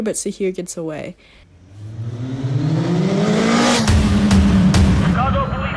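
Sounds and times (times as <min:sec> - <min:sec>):
speech: 0:00.0 - 0:02.4
car engine revving hard during a high-speed chase: 0:01.6 - 0:05.6.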